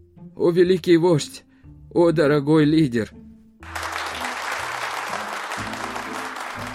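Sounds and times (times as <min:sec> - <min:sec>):
speech: 0:00.4 - 0:03.2
many hands applauding in a large hall: 0:03.6 - 0:06.7.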